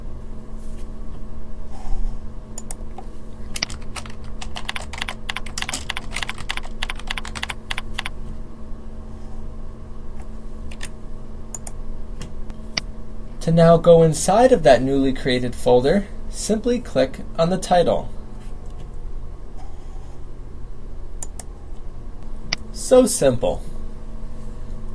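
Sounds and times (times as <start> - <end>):
constant low electrical hum: 0.0 - 24.9
folder name typed on a computer keyboard: 3.5 - 8.1, 10.7 - 10.9
speech: 13.5 - 18.2, 22.9 - 23.7.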